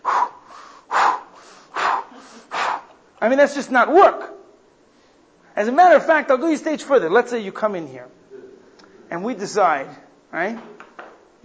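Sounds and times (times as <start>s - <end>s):
loud exaggerated breathing before exercises: 0.0s - 3.0s
speech: 3.2s - 4.4s, 5.6s - 8.2s, 9.1s - 10.8s.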